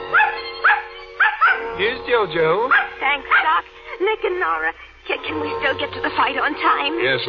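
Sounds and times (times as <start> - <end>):
dog barking and yipping: 0.1 - 1.9, 2.7 - 3.7
speech: 2.2 - 3.5, 4.1 - 7.2.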